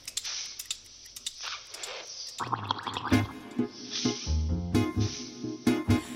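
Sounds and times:
bubbly clicks: 0.1s - 3.3s
wet popping and gurgling like liquid bubbling: 2.4s - 3.5s
music track: 3.0s - 6.1s.

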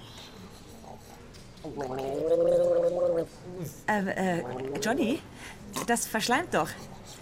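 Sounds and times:
person gargling milk: 1.6s - 5.0s
speech: 1.6s - 6.9s.

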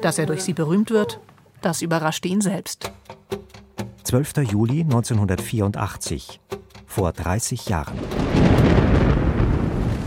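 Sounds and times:
speech: 0.0s - 3.4s, 4.0s - 8.8s
thunder of a severe hailstorm: 7.9s - 10.0s.

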